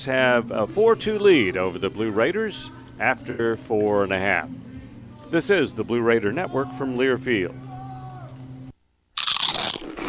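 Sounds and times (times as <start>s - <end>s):
speech: 0.0s - 4.6s, 5.3s - 7.6s
crisp nacho chip being bitten: 9.2s - 10.0s.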